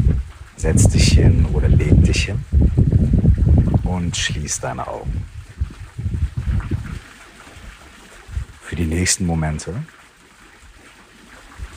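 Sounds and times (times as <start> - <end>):
soft rush of wind: 0.0 - 7.0
flowing water: 0.0 - 11.7
person speaking calmly: 0.6 - 2.4, 3.8 - 5.2, 8.6 - 9.9
speech: 0.6 - 2.8, 3.9 - 5.3, 8.7 - 10.0.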